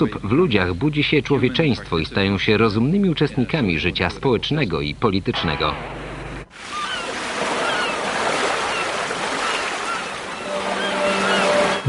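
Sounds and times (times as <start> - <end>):
speech: 0.0 - 6.0
faint tonal hum: 0.0 - 6.5, 10.1 - 11.8
sea surf washing in: 6.5 - 11.8.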